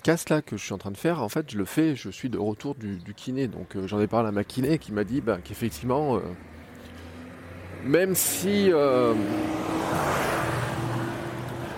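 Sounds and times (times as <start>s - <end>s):
speech: 0.0s - 6.6s, 7.8s - 10.2s
old Volvo car engine climbing hill in first gear: 3.6s - 11.7s.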